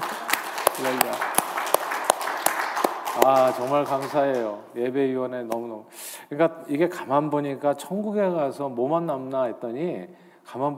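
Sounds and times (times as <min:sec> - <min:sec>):
audience clapping together in a steady rhythm: 0:00.0 - 0:04.6
speech: 0:00.8 - 0:01.4, 0:03.2 - 0:10.7.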